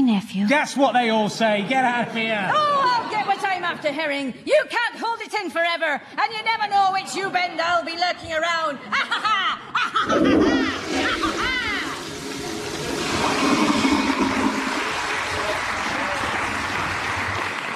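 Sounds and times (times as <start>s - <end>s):
speech: 0.1s - 11.2s
laughter-like sounds: 8.8s - 12.0s
toilet flush roaring and gurgling: 10.0s - 17.0s.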